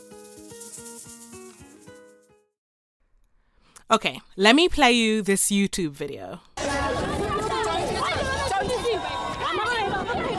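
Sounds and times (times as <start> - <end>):
speech: 3.9 - 6.5
dense crowd of protesters shouting: 6.6 - 10.3
protest crowd chanting at a pride march: 6.6 - 10.3.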